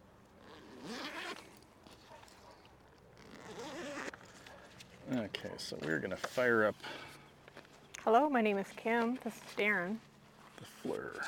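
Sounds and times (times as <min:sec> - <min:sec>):
backpack zipper being zipped: 0:00.4 - 0:02.2, 0:03.2 - 0:04.3
speech: 0:05.1 - 0:07.1, 0:08.0 - 0:11.2.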